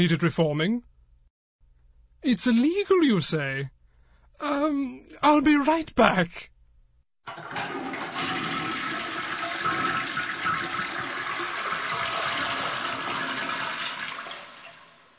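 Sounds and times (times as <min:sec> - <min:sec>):
speech: 0:00.0 - 0:00.9, 0:02.2 - 0:03.8, 0:04.4 - 0:06.5, 0:07.2 - 0:07.9
toilet flushing: 0:07.3 - 0:15.1.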